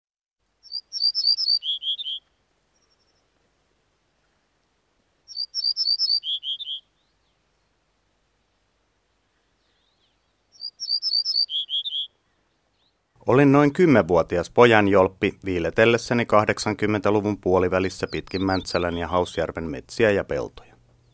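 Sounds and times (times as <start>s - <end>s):
ortolan bunting singing ringing high notes dropping to buzzy notes: 13.2s - 20.8s
speech: 13.3s - 20.7s.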